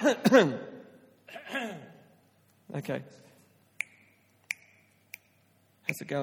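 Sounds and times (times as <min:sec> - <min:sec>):
person coughing short throaty coughs: 0:00.0 - 0:00.6, 0:01.3 - 0:02.0
speech: 0:00.0 - 0:00.7, 0:02.7 - 0:03.2, 0:05.9 - 0:06.2.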